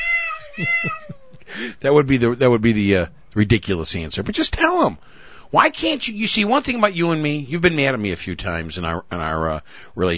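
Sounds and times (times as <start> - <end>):
cat yowling in a cat fight sound effect: 0.0 - 1.4
speech: 0.6 - 10.1.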